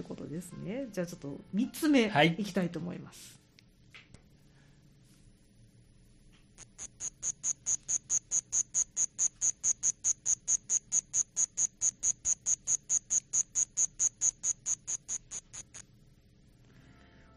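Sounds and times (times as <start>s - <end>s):
soft low hum: 0.0s - 17.3s
speech: 0.3s - 3.4s
rice-field cricket Tambo-korogi chirping: 6.6s - 16.5s.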